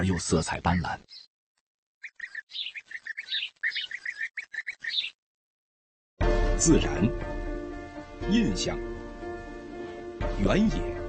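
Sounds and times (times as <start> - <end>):
speech: 0.0 - 1.3, 6.6 - 7.4, 8.2 - 9.0, 10.3 - 11.0
young nestling birds chirping: 0.0 - 1.3, 2.0 - 5.2.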